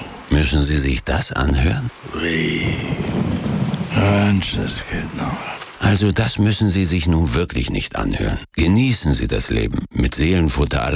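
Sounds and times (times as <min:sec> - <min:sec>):
rain falling: 0:00.0 - 0:08.4
speech: 0:00.3 - 0:03.4, 0:04.0 - 0:10.9
distant thunder rumbling: 0:01.4 - 0:06.2.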